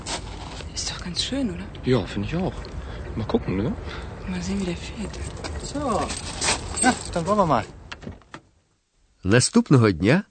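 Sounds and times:
speech: 1.0s - 8.2s, 9.2s - 10.2s
car keys jangling: 5.2s - 7.4s.

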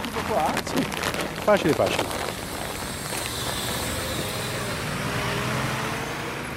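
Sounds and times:
speech: 0.3s - 2.3s
bus driving over a freshly filled pothole on a road in Rome: 1.6s - 6.5s.

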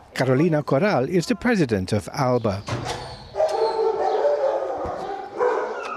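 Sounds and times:
speech: 0.2s - 2.9s
many dogs barking and yelping at a dog pound: 2.9s - 5.9s.

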